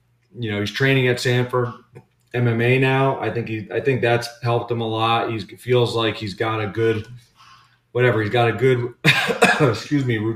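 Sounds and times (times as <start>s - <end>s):
speech: 0.3s - 7.3s, 7.9s - 10.3s
sick person coughing: 9.0s - 9.9s.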